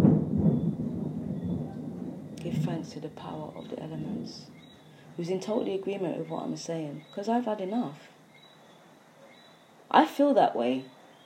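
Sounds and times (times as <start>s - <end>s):
thunder rumbling: 0.0s - 7.2s
speech: 2.8s - 4.6s, 5.2s - 8.1s, 10.0s - 11.0s.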